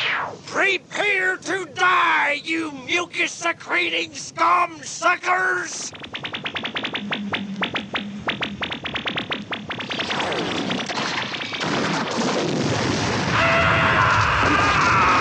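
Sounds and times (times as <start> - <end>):
synthetic sci-fi explosion destroying a space fleet: 0.0 - 0.4, 5.9 - 15.1
speech: 0.6 - 6.3.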